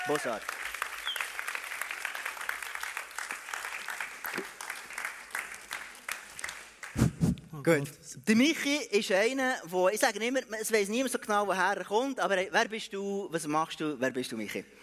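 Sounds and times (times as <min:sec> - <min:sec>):
speech: 0:00.0 - 0:00.6, 0:07.6 - 0:14.8
audience applause welcoming a guest: 0:00.0 - 0:07.2.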